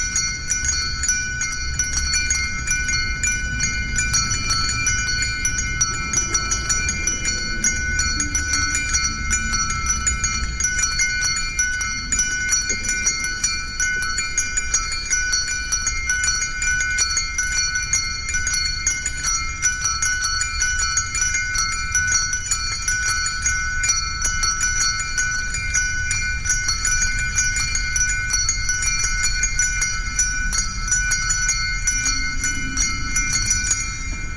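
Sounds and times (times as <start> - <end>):
church bells ringing: 0.0 - 34.3.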